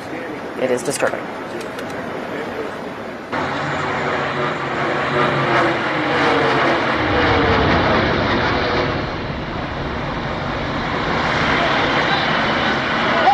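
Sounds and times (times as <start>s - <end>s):
low-flying jet plane engine roaring: 0.0s - 13.3s
speech: 0.6s - 1.4s.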